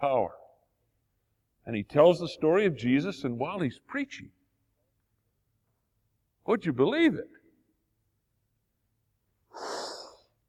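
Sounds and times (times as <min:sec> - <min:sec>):
speech: 0:01.7 - 0:04.4, 0:06.5 - 0:07.4
person imitating heavy breathing: 0:09.5 - 0:10.3.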